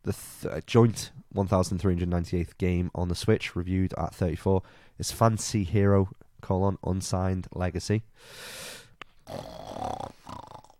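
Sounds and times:
speech: 0.0 - 10.0
loud snore made by a voice: 9.2 - 10.7.

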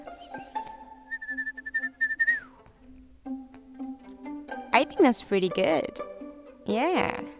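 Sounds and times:
person whistling a short wavering held note: 0.1 - 2.6
speech: 4.8 - 7.3.

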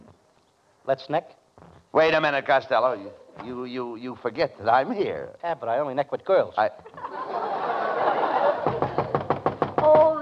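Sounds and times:
speech: 0.9 - 7.1
laughter: 6.8 - 9.2
loud knocks on a door: 8.6 - 10.2.

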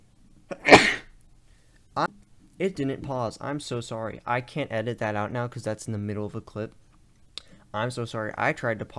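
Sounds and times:
person sneezing: 0.5 - 1.1
speech: 2.0 - 6.8, 7.7 - 8.9.

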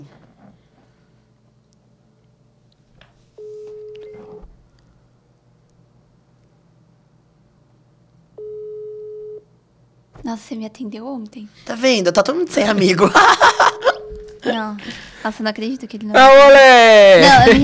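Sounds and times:
low constant hum: 0.0 - 17.6
telephone call tone on an unanswered call: 8.4 - 9.4, 13.6 - 14.4
speech: 10.3 - 13.8, 14.4 - 17.6
laughter: 13.0 - 14.6.

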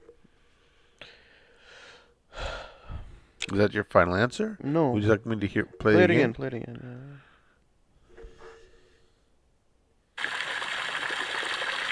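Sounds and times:
speech: 3.5 - 7.0
water fountain splashing: 10.2 - 11.9.

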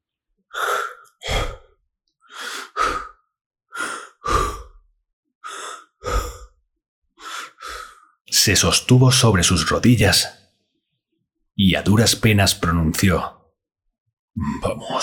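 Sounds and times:
heavy labored breathing: 0.5 - 4.8, 5.4 - 6.6, 7.2 - 8.2
speech: 8.4 - 10.4, 11.6 - 13.4, 14.4 - 15.0.

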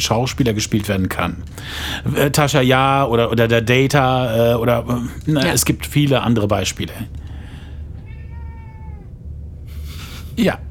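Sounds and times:
speech: 0.0 - 7.2, 10.4 - 10.6
low steady hum: 0.0 - 10.6
cat meowing: 7.9 - 9.2.

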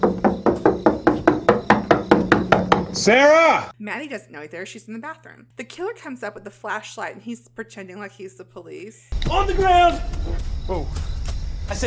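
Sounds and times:
rapid firm knocking on a door: 0.0 - 3.1
speech: 3.0 - 11.8.

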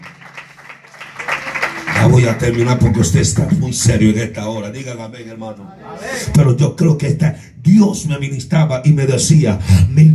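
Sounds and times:
congregation clapping their hands together: 0.0 - 4.2
speech: 2.0 - 10.1.

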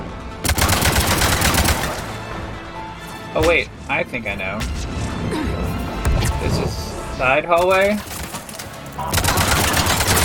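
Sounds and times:
video game automatic gunfire in a side hallway: 0.5 - 2.0, 9.1 - 10.2
speech: 3.3 - 5.5, 6.4 - 8.2, 9.0 - 9.3.

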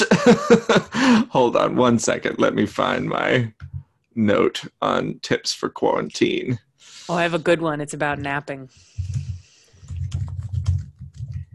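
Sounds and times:
speech: 0.0 - 0.8, 1.4 - 9.3
laughter: 0.0 - 3.4
typing on a computer keyboard: 9.0 - 11.5.

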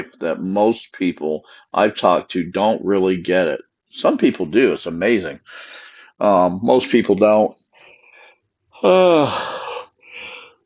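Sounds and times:
speech: 0.0 - 7.6, 8.8 - 9.6
person yawning loudly: 8.8 - 10.5.

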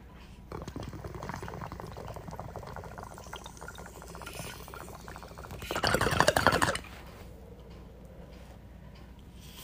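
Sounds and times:
water bubbling through a bong during a cannabis hit: 0.4 - 6.9.

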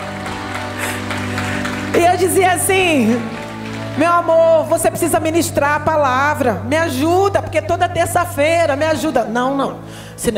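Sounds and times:
crowd clapping: 0.0 - 5.3
speech: 2.2 - 3.4, 4.0 - 10.3.

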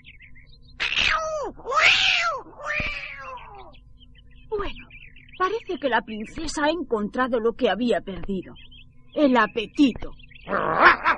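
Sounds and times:
cat meowing: 0.8 - 3.7
speech: 5.8 - 11.0.

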